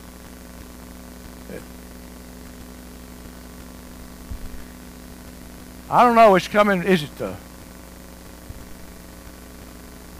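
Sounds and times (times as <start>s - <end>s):
faint static hiss: 0.0s - 10.1s
low electrical hum: 0.0s - 10.1s
speech: 1.5s - 1.8s, 5.9s - 7.5s.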